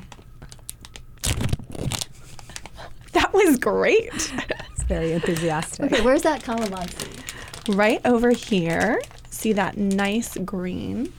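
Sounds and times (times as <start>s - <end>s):
plastic crinkling: 0.0s - 11.1s
plastic zipper bag pulled open with a tearing rip: 0.1s - 2.2s, 5.2s - 9.4s
speech: 3.4s - 7.1s, 7.7s - 11.1s.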